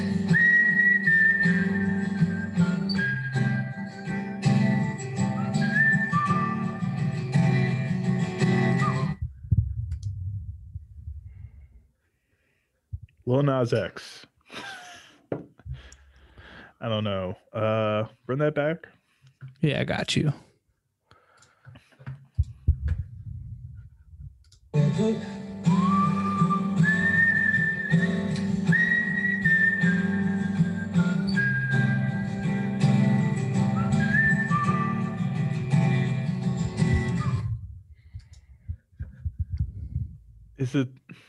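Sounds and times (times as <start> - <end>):
strummed guitar: 0.0 - 9.2, 24.8 - 37.5
whistled melody: 0.0 - 9.2, 24.8 - 37.7
steady low beat: 9.2 - 11.4, 36.6 - 40.6
speech: 13.3 - 14.3, 16.8 - 20.5, 25.0 - 25.4, 40.6 - 41.0.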